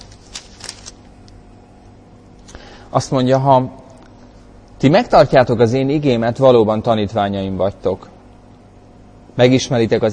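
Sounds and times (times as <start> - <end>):
pages of a Bible being turned: 0.0 - 1.4
speech: 2.9 - 3.8, 4.8 - 8.1, 9.4 - 10.1.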